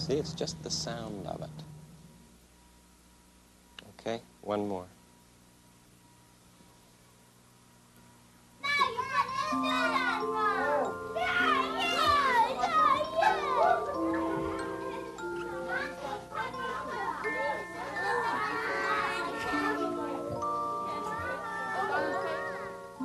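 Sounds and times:
speech: 0.1 - 1.6, 4.1 - 5.0
children shouting, squealing and chattering at a birthday party: 8.6 - 22.9.

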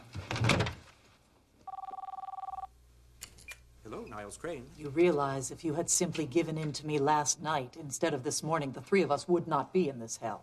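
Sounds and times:
cell phone ringing with a bright warbling trill: 1.6 - 2.7
speech: 4.1 - 10.4.

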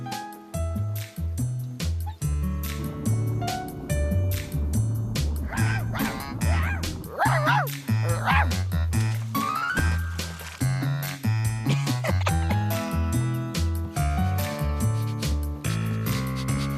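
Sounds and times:
bouncy steady musical backing: 1.0 - 16.7
dog barking and yipping: 5.4 - 8.6.

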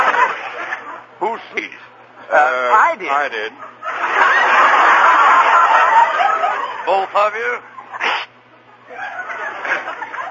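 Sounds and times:
laughter: 0.0 - 2.3, 3.3 - 10.2
speech: 1.2 - 4.8, 6.9 - 8.2
person sneezing: 8.0 - 8.4.

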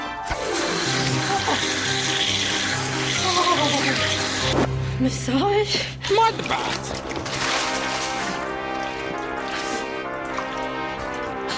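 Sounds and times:
cold shower water spraying: 0.3 - 4.7, 7.0 - 11.2
speech: 4.5 - 7.4.

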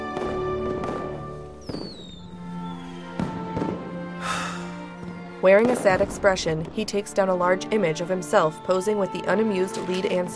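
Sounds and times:
fireworks popping and bursting in the sky: 0.0 - 4.3, 5.0 - 7.2
speech: 5.4 - 10.3.

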